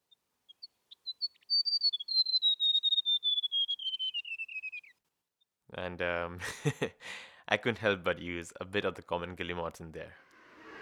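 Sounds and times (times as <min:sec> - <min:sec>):
white-throated gerygone singing a descending whistled trill: 0:01.0 - 0:04.9
speech: 0:05.8 - 0:10.2.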